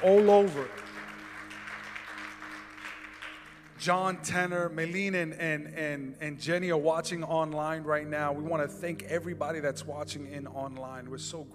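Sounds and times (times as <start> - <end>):
speech: 0.0 - 0.8, 3.8 - 11.5
audience round of applause: 0.0 - 4.3.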